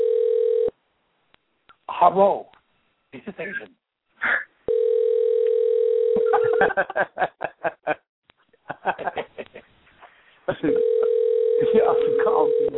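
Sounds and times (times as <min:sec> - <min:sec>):
ringback tones of an unanswered phone call: 0:00.0 - 0:00.7, 0:04.7 - 0:06.6, 0:10.7 - 0:12.7
speech: 0:02.0 - 0:02.5, 0:03.1 - 0:04.4, 0:06.6 - 0:08.0
people snickering and chuckling: 0:06.2 - 0:08.0, 0:08.6 - 0:09.7.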